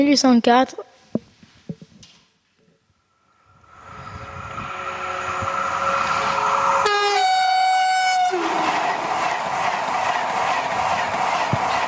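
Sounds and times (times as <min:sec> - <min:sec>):
train rumbling: 0:03.2 - 0:11.8
blaring multi-tone train horn: 0:04.7 - 0:08.8.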